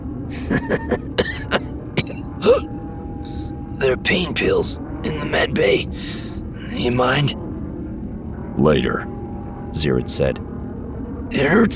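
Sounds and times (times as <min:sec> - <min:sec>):
short breathy chuckle pulses: 0:00.3 - 0:02.7, 0:05.9 - 0:06.3
rough strained coughs: 0:00.4 - 0:02.7
speech: 0:00.5 - 0:01.0, 0:04.0 - 0:06.2, 0:06.8 - 0:07.4, 0:08.6 - 0:09.2, 0:09.8 - 0:10.5, 0:11.3 - 0:11.7.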